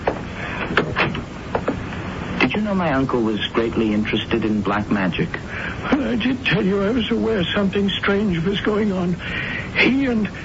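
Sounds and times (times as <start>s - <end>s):
library door being pushed shut: 0.0s - 1.8s
speech: 2.6s - 10.4s.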